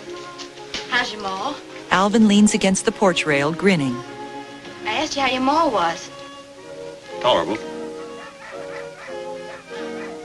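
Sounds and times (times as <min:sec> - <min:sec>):
speech: 0:01.0 - 0:04.1, 0:05.0 - 0:06.1, 0:07.2 - 0:07.7
hound dogs baying during a hunt: 0:07.7 - 0:10.2.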